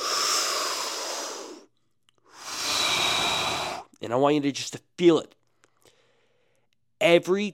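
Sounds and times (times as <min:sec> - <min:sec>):
deep breaths during a hypnosis session: 0:00.0 - 0:04.0, 0:05.5 - 0:06.8
speech: 0:04.0 - 0:05.4, 0:07.0 - 0:07.5.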